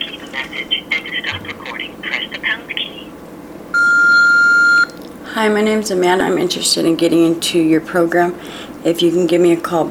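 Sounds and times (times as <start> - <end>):
voicemail beep tone: 3.8 - 4.9
speech: 5.4 - 9.9.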